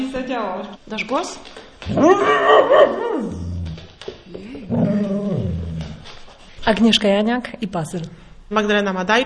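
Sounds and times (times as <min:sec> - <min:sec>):
speech: 0:00.0 - 0:03.5, 0:06.6 - 0:09.2
dog barking into a microphone: 0:01.9 - 0:03.4.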